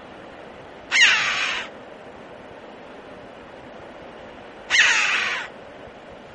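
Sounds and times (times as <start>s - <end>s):
Red-billed chough harsh rasping call: 0.9s - 1.7s, 4.7s - 5.5s.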